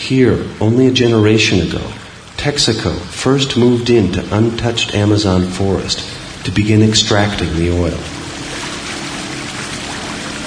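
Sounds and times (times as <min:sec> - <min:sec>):
splashing and rushing river water: 0:00.0 - 0:10.4
speech: 0:00.1 - 0:08.2
long dugout boat slapping across river water: 0:02.7 - 0:10.4.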